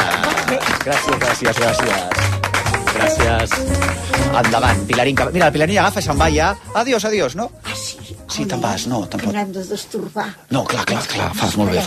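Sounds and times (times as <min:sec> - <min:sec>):
audience applause: 0:00.0 - 0:05.7
speech: 0:00.8 - 0:11.8.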